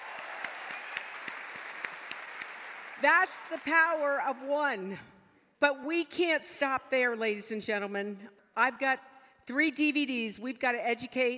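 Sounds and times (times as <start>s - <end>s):
audience applause: 0.0s - 3.6s
speech: 3.0s - 11.3s.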